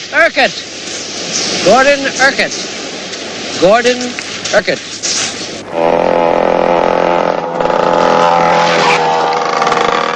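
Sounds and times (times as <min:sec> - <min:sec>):
speech: 0:00.3 - 0:02.8, 0:03.6 - 0:06.0
dirt bike engine roaring as it speeds down a road: 0:05.4 - 0:10.1.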